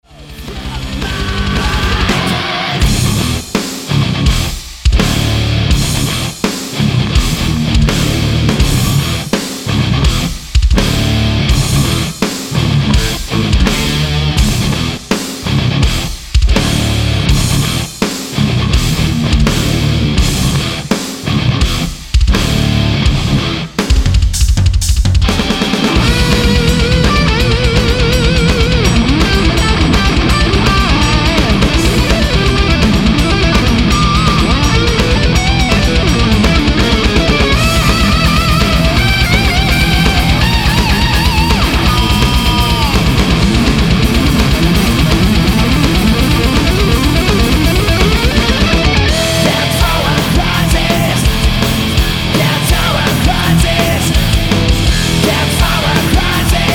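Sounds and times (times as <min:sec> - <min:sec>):
modern high gain guitar: 0:00.0 - 0:56.7.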